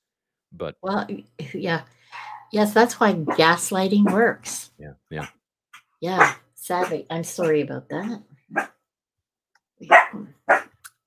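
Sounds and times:
speech: 0.5 - 5.4, 6.0 - 8.8
chihuahua barking: 6.2 - 6.9, 9.9 - 10.7.

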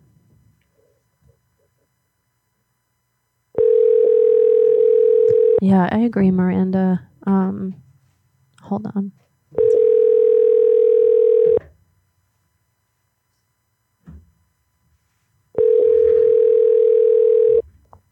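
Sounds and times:
telephone ringback tone: 3.6 - 5.6, 9.6 - 11.6, 15.6 - 17.6
speech: 5.6 - 7.8, 8.7 - 9.2.

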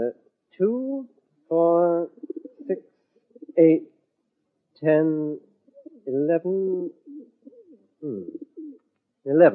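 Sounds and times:
speech: 0.0 - 1.7, 3.6 - 3.9, 4.8 - 5.4, 6.3 - 7.0, 9.4 - 9.5
plump birds kept for sale as pie filling cooing: 1.6 - 2.8, 3.4 - 3.8, 5.7 - 8.8.

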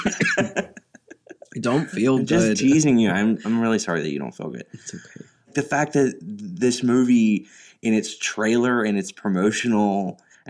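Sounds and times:
person coughing harshly: 0.0 - 0.8
laughter: 0.0 - 2.6
speech: 1.6 - 10.4.

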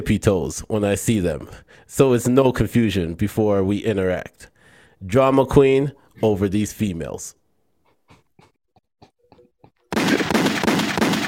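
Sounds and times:
speech: 0.0 - 7.4
gunshot sound effects in rapid fire: 9.9 - 11.2.

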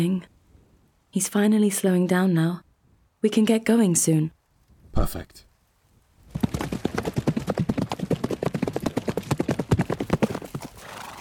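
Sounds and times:
speech: 0.0 - 0.3, 1.1 - 4.4, 5.0 - 5.5
horse hooves clip-clopping on a hard surface: 6.3 - 11.2.

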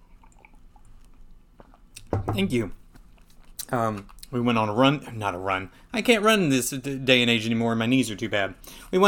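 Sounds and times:
low hum: 0.0 - 9.0
person sipping hot coffee: 0.1 - 2.1
speech: 2.4 - 2.8, 3.7 - 9.0.

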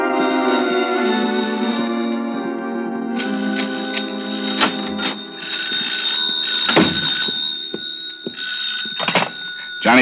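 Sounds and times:
hotel-room telephone ringing with a bright bell tone: 0.2 - 10.0.

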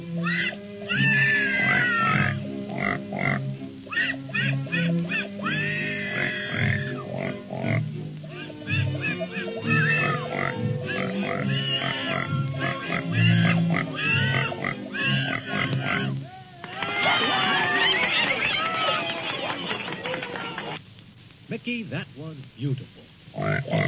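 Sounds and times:
pigs grunting and oinking: 0.2 - 16.2, 23.3 - 23.8
laughter: 4.1 - 5.7, 8.4 - 10.2, 16.7 - 20.8.

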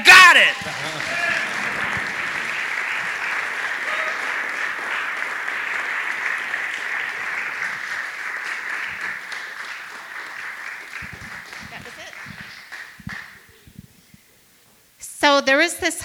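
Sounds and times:
audience applause at a storytelling event: 0.1 - 13.7
laughter: 0.5 - 13.7.

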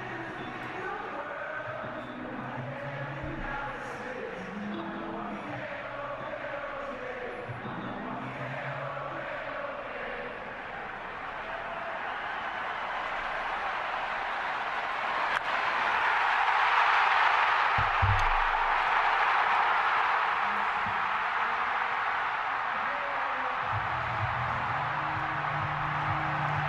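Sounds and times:
baseball stadium crowd roaring after home run: 0.0 - 26.6.

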